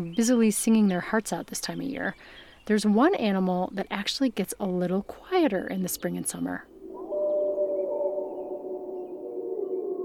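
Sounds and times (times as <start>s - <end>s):
speech: 0.0s - 6.7s
wolf in Yellowstone howling: 6.7s - 10.0s.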